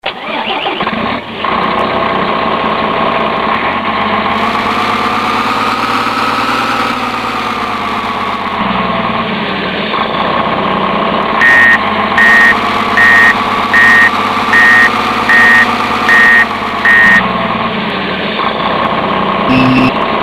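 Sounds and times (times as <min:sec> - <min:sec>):
model snow groomer: 0:00.0 - 0:20.2.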